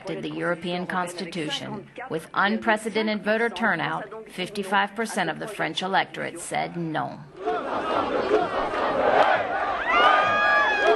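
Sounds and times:
speech: 0:00.1 - 0:09.5
large jubilant crowd roaring and cheering at celebration: 0:07.4 - 0:10.9
individual shouts and rising whoops: 0:09.8 - 0:10.9.

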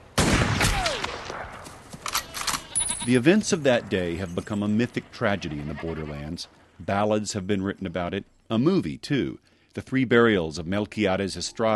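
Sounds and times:
M16 rifle shot: 0:00.1 - 0:02.6
speech: 0:03.1 - 0:11.7.

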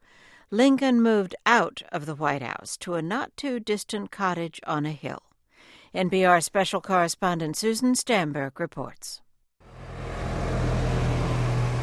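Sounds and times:
speech: 0:00.5 - 0:05.3, 0:05.9 - 0:09.2
deep engine drone of cars: 0:09.6 - 0:11.8
thick traffic rumbling along a main avenue in a capital city: 0:09.7 - 0:11.8.

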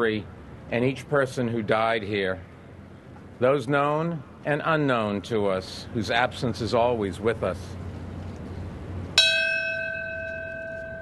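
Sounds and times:
speech: 0:00.0 - 0:02.5, 0:03.4 - 0:07.8
deep memorial bell tolling: 0:09.2 - 0:11.0.

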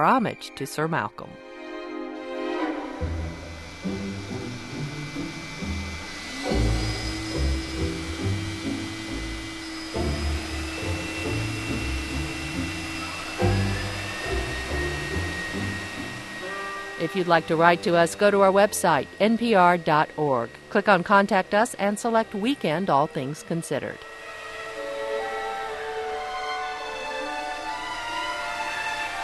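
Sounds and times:
speech: 0:00.0 - 0:01.6, 0:03.0 - 0:03.2, 0:17.0 - 0:24.1
symphony orchestra playing loudly: 0:01.4 - 0:19.3, 0:24.1 - 0:29.2
vacuum cleaners whining and roaring: 0:01.4 - 0:29.2.

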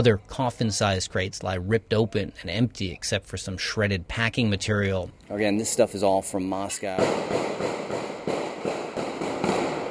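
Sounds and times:
speech: 0:00.0 - 0:08.1
celebratory gunfire outdoors: 0:07.0 - 0:09.8.

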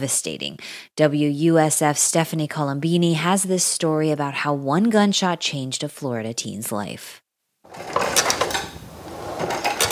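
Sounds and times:
speech: 0:00.0 - 0:08.3
physical therapy exercise machine with a foot plate clattering: 0:07.7 - 0:09.8.

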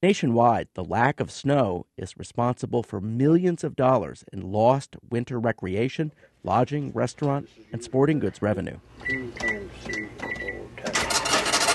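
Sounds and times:
speech: 0:00.0 - 0:10.2
faint voices: 0:06.0 - 0:11.3
cash register electronic beeps ringing up a sale: 0:09.0 - 0:11.7
cash register drawer sliding open with a rattling clatter: 0:10.9 - 0:11.7.

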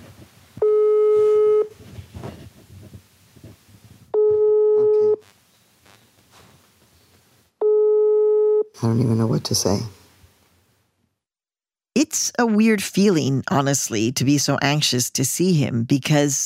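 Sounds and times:
outgoing phone call ringback tone: 0:00.6 - 0:01.7, 0:04.2 - 0:05.2, 0:07.6 - 0:08.7
speech: 0:09.0 - 0:10.0, 0:12.4 - 0:16.4.

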